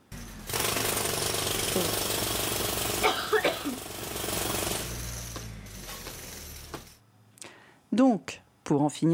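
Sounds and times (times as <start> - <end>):
jackhammer pounding: 0.0 - 7.0
speech: 1.8 - 2.0, 8.0 - 9.1.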